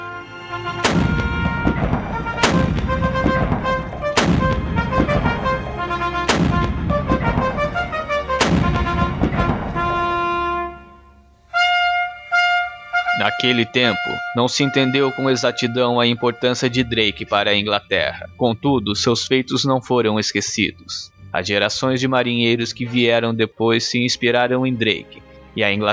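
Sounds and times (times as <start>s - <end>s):
trumpets sounding: 0.0s - 17.8s
brass notes: 0.0s - 17.9s, 22.6s - 23.4s
speech: 0.5s - 1.1s, 13.4s - 25.9s
cannon blasts as a ceremonial salute at a burial at sea: 0.7s - 10.7s.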